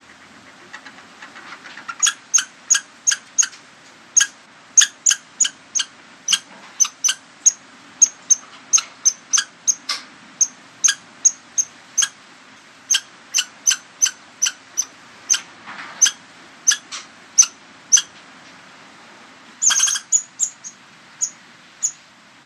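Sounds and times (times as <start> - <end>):
squirrels chattering: 1.8 - 3.6, 4.2 - 12.2, 12.9 - 18.1, 19.6 - 22.0.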